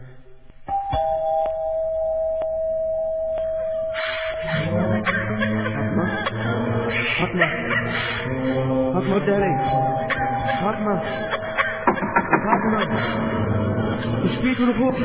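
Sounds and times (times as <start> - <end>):
busy noise: 0.0 - 15.0
electronic doorbell ringing: 0.7 - 5.0, 9.4 - 11.8
laughter: 4.4 - 15.0
speech: 14.6 - 15.0.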